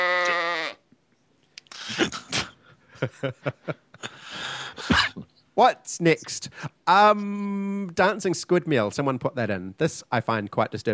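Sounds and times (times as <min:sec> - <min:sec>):
sheep bleating: 0:00.0 - 0:00.8
speech: 0:03.0 - 0:03.9, 0:05.6 - 0:10.9.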